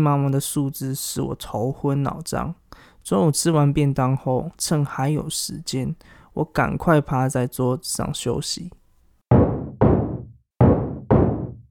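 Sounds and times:
speech: 0.0s - 8.8s
knocking on a wooden office door: 9.3s - 11.6s.

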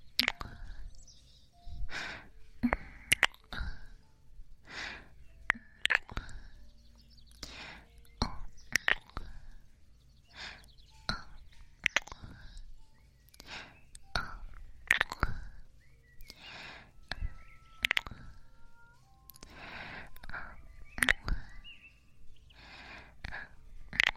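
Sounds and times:
faint breathy mouth sounds: 0.0s - 21.8s, 22.4s - 24.1s
wet kissing smacks: 11.8s - 12.2s, 14.9s - 15.3s, 17.8s - 18.2s.

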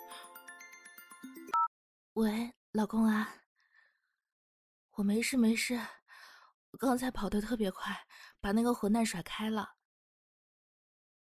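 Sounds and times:
mobile phone ringtone with bright repeating electronic melody: 0.0s - 1.7s
speech: 2.2s - 3.4s, 5.0s - 6.0s, 6.8s - 9.8s.

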